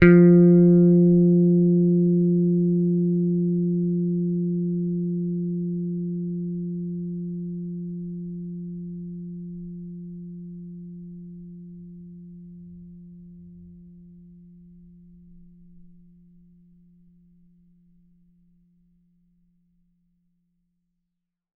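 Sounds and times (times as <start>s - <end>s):
bass guitar picked note F3: 0.0s - 10.4s.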